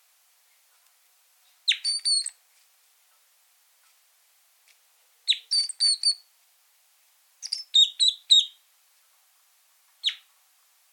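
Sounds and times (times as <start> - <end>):
red crossbill squeaky call: 1.7 - 2.4, 5.3 - 6.2, 7.4 - 8.6.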